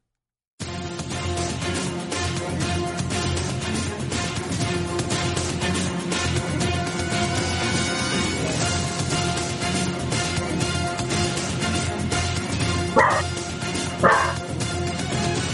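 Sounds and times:
video game theme music: 0:00.6 - 0:15.5.

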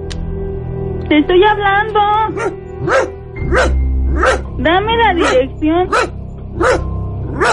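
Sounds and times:
speech: 0:01.1 - 0:06.8
dog barking: 0:02.3 - 0:04.5, 0:05.2 - 0:07.5.

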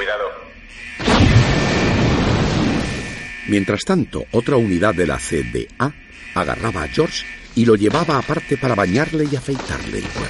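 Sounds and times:
controlled explosion of a sock by a bomb disposal unit: 0:01.0 - 0:03.3
speech: 0:03.5 - 0:10.2.

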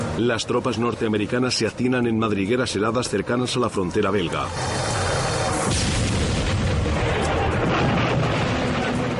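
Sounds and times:
speech: 0:00.2 - 0:04.9
artillery shelling troops in a forest in the Ardennes: 0:04.5 - 0:09.1.

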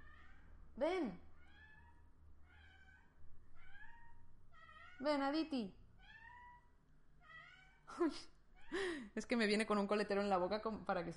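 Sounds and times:
speech: 0:00.8 - 0:01.3, 0:05.0 - 0:05.8, 0:07.9 - 0:11.1
domestic female cat meowing to play: 0:01.4 - 0:05.2, 0:06.0 - 0:07.9.

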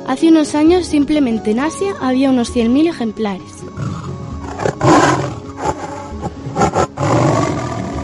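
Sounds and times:
speech: 0:00.1 - 0:04.1
tiger roaring: 0:03.8 - 0:08.0.

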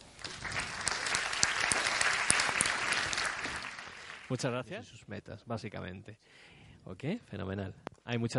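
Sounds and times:
audience applause: 0:00.0 - 0:04.5
speech: 0:04.3 - 0:08.3.

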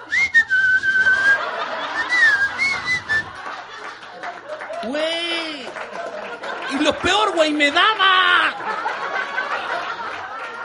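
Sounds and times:
person whistling a sliding tone imitating a cold draft through a door: 0:00.0 - 0:01.4, 0:02.0 - 0:03.3
laughter: 0:01.0 - 0:10.6
speech: 0:06.7 - 0:08.6.

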